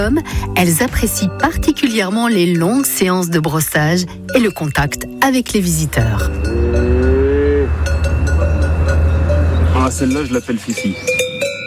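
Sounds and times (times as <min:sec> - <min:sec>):
speech: 0:00.0 - 0:06.6, 0:09.9 - 0:11.2
sharp metallic clinks: 0:01.2 - 0:11.6
medium-sized black Hérens cow mooing: 0:05.9 - 0:09.7.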